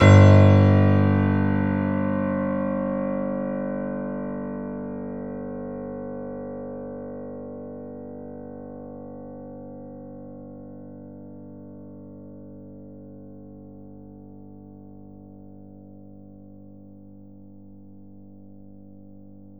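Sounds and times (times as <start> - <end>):
grand piano note G0 fortissimo: 0.0 - 3.9.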